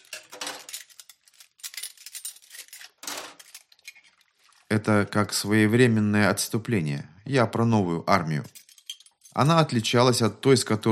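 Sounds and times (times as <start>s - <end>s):
dishes and cutlery being washed in a kitchen in Denver, Colorado, USA: 0.0s - 4.3s, 8.4s - 9.9s
speech: 4.7s - 8.6s, 9.4s - 10.8s.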